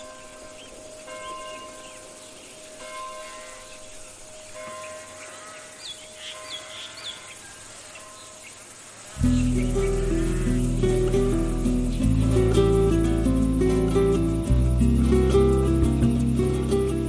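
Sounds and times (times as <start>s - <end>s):
crickets chirping in midsummer in Provence in southern France: 0.0s - 17.0s
loud sustained low droning tones: 9.2s - 17.0s.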